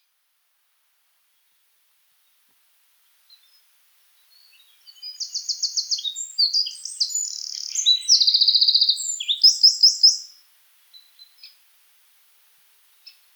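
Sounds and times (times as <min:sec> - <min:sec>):
Eurasian wren Troglodytes troglodytes singing rapid trills and metallic rattles: 0:04.3 - 0:10.4.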